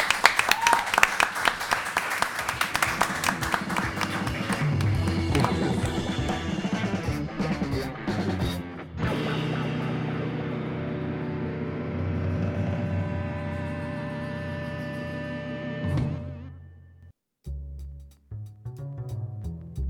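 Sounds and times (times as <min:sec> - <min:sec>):
applause from a small group for a guest on a radio program: 0:00.0 - 0:06.4
music: 0:02.4 - 0:19.8.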